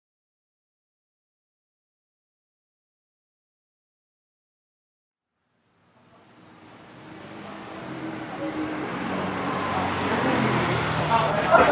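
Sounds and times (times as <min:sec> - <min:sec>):
busy street traffic thick with scooters: 0:06.0 - 0:11.7
faint indistinct voices: 0:06.0 - 0:11.7.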